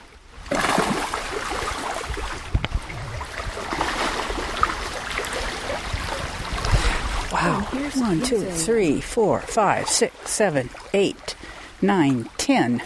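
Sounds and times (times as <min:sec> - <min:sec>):
salmon splashing while swimming upstream: 0:00.5 - 0:08.1
speech: 0:07.8 - 0:12.8.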